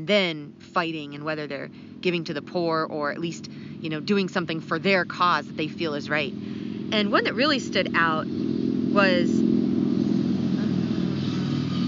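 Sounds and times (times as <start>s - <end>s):
speech: 0.0s - 9.5s
motorcycle engines rumbling: 0.0s - 11.8s.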